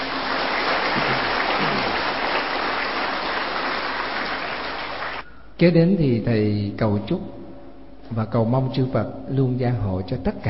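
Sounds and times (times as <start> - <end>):
large crowd applauding: 0.0 - 5.2
speech: 5.6 - 7.4, 8.1 - 10.4.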